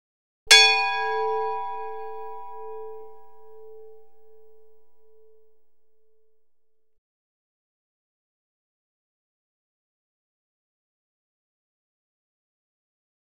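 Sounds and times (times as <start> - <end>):
bell at Lloyds rung: 0.5 - 5.6.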